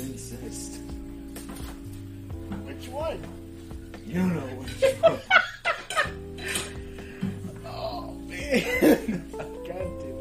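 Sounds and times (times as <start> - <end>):
speech: 3.1 - 3.4, 4.1 - 5.3, 8.5 - 9.3
laughter: 4.6 - 6.6, 8.4 - 9.7
dishes and cutlery clattering while being washed: 4.6 - 7.5.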